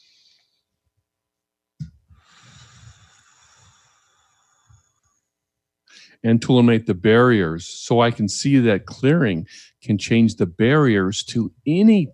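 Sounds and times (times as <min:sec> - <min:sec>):
breath drawn in sharply: 0:02.1 - 0:05.1
speech: 0:06.2 - 0:12.1.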